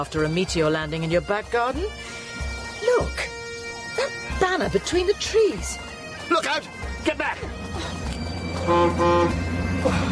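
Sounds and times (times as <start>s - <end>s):
speech: 0.0s - 2.2s, 4.5s - 8.0s, 8.7s - 10.1s
low engine rumble: 7.3s - 10.1s
local bus horn honking on a village street: 8.0s - 10.1s.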